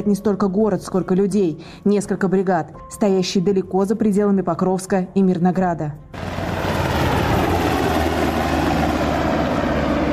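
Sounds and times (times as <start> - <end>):
speech: 0.0 - 6.4
Black Hawk helicopter rotors and engine whirring: 6.1 - 10.1.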